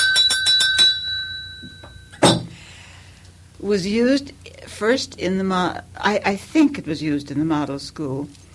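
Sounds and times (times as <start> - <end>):
hand-rung school bell clanging: 0.0 - 2.4
speech: 3.6 - 8.4.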